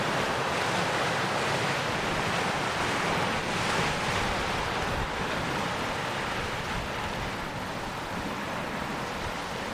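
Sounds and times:
light wind buffeting the microphone: 0:00.0 - 0:09.7
sea water lapping and sloshing against the shore: 0:00.0 - 0:09.7.

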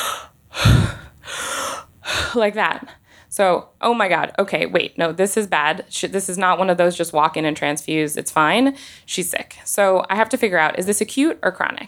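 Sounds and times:
voice imitating a pregnant woman gasping for air: 0:00.0 - 0:02.4
speech: 0:02.3 - 0:11.8.

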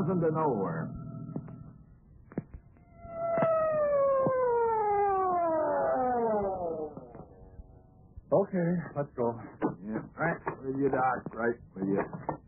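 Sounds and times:
speech: 0:00.0 - 0:01.0, 0:08.3 - 0:12.4
siren winding down: 0:00.0 - 0:01.9, 0:02.8 - 0:08.0.

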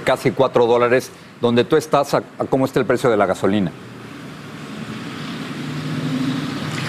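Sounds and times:
speech: 0:00.0 - 0:03.9
outdoor traffic rumble at a gas station: 0:00.0 - 0:06.8
car engine passing at a gas station: 0:03.8 - 0:06.8.

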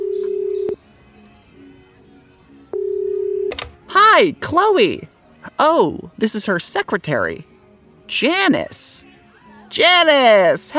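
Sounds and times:
phone speed dial electronic tone: 0:00.0 - 0:00.8, 0:02.7 - 0:03.7
phone click: 0:03.5 - 0:03.8
speech: 0:04.2 - 0:07.5, 0:08.1 - 0:09.1, 0:09.7 - 0:10.7.

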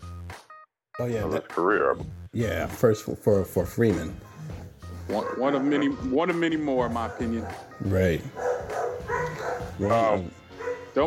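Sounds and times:
speech: 0:01.0 - 0:04.3, 0:05.1 - 0:08.5, 0:09.8 - 0:10.4
dogs barking: 0:05.0 - 0:11.0.

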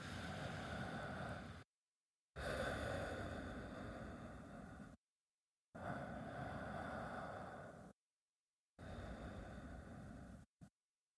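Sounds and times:
slow deep breathing: 0:00.0 - 0:01.7, 0:02.4 - 0:05.0, 0:05.7 - 0:08.0, 0:08.8 - 0:10.8.

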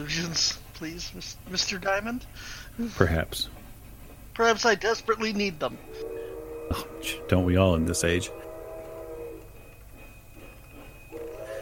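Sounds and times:
speech: 0:00.0 - 0:03.6, 0:04.4 - 0:06.1, 0:06.7 - 0:08.5
train wheels rumbling as it arrives at a station: 0:00.0 - 0:11.5
train squealing as it slows and stops at a station: 0:04.4 - 0:11.5.

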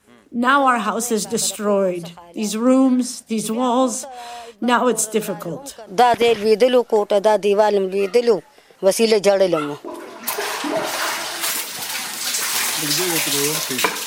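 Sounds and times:
speech: 0:00.4 - 0:10.0, 0:12.8 - 0:14.0
water sloshing and splashing as floors are washed in a flood-damaged house: 0:09.8 - 0:14.0.

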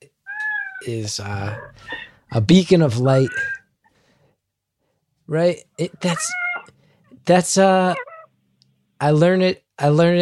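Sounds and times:
cat meowing: 0:00.2 - 0:00.9, 0:03.1 - 0:03.7, 0:05.9 - 0:06.8, 0:07.9 - 0:08.3
speech: 0:00.8 - 0:03.6, 0:05.3 - 0:06.4, 0:07.2 - 0:08.1, 0:09.0 - 0:10.2.

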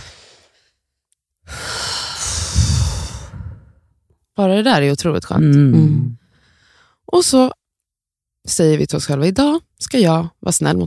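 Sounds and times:
person taking a deep breath during a calming exercise: 0:00.0 - 0:00.8, 0:01.5 - 0:03.9, 0:06.2 - 0:07.0
speech: 0:04.4 - 0:06.2, 0:07.1 - 0:07.6, 0:08.4 - 0:10.8.

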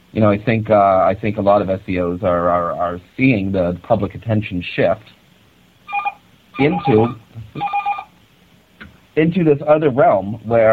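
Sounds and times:
speech: 0:00.1 - 0:05.2, 0:06.6 - 0:07.8, 0:09.2 - 0:10.7
telephone ringing with an electronic trill: 0:05.9 - 0:08.1.

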